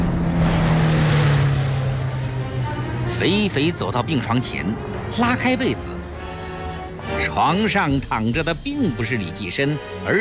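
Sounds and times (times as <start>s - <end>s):
car speeding off from a hospital back gate: 0.0s - 5.3s
speech: 3.2s - 6.0s, 7.2s - 10.2s.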